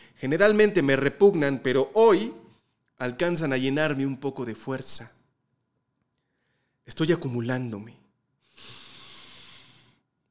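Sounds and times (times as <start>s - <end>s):
speech: 0.2s - 2.4s, 3.0s - 5.2s, 6.9s - 8.0s
long breath: 6.2s - 6.8s, 8.4s - 10.1s.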